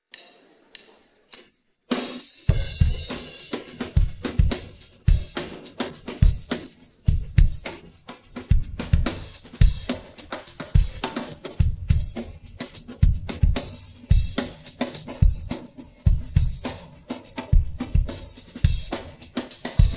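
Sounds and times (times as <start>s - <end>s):
106 bpm drum pattern: 1.9s - 19.9s.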